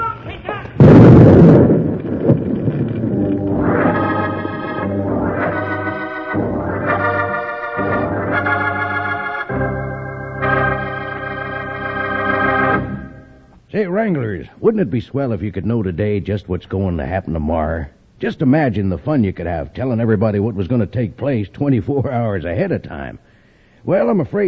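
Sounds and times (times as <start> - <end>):
dynamite explosion after being shot at: 0.8 - 8.8
dramatic music chords: 2.7 - 13.4
speech: 14.0 - 24.4.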